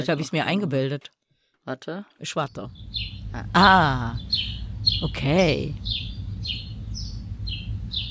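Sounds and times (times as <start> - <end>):
speech: 0.0 - 6.1
native German bird chirping: 2.3 - 8.0
low rumble: 2.5 - 8.0.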